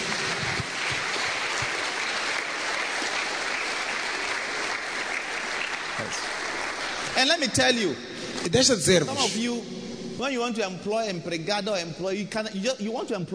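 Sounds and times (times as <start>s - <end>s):
church congregation clapping hands: 0.0s - 8.6s
speech: 6.1s - 6.3s, 7.2s - 13.3s.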